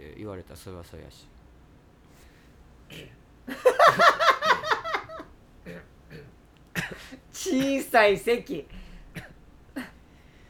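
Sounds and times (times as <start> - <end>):
speech: 0.2 - 1.4, 2.9 - 4.2, 5.6 - 8.8
small short coughs: 2.9 - 3.2, 5.7 - 7.2
laughter: 3.5 - 5.3.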